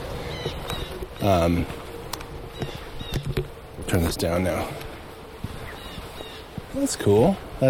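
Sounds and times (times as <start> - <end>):
light rustling: 0.0 - 7.6
jay calling: 0.1 - 1.6, 2.4 - 3.4, 5.6 - 6.6
speech: 1.2 - 1.8, 3.9 - 4.9, 6.8 - 7.6.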